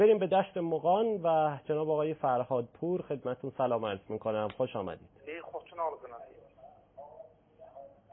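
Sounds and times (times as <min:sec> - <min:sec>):
speech: 0:00.0 - 0:06.4
phone-filtered television voices behind a caller on a telephone line: 0:04.2 - 0:08.1.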